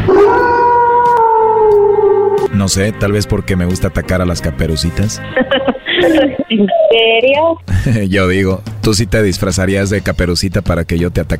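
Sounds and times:
lone wolf howling: 0.0s - 2.5s
speech: 2.6s - 11.3s
laughter: 5.3s - 6.9s.

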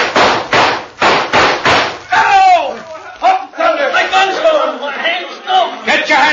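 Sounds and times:
gunshots fired at the guns of bandits: 0.0s - 2.1s
impacts: 0.0s - 3.2s
people shouting: 1.4s - 4.6s.

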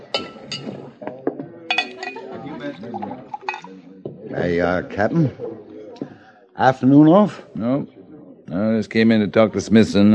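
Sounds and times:
murmuring voices: 0.0s - 10.1s
whiskey glass clinking as rye is served: 0.1s - 0.9s, 1.7s - 3.8s
speech: 0.5s - 1.1s, 2.8s - 3.3s, 4.3s - 5.6s, 6.6s - 10.1s.

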